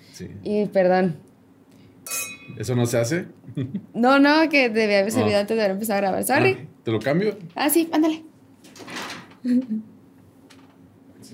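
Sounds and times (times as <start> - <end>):
speech: 0.2 - 1.3, 2.6 - 8.3, 9.4 - 9.9
glasses clinking in a toast: 2.0 - 2.8.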